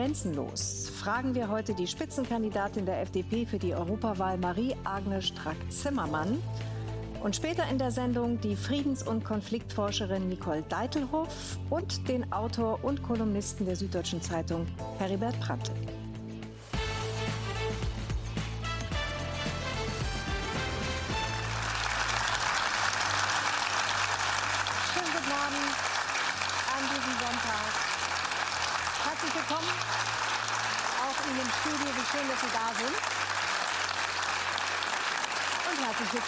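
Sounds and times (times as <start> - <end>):
speech: 0.0 - 15.9
music: 0.0 - 36.2
large audience applauding: 21.1 - 36.2.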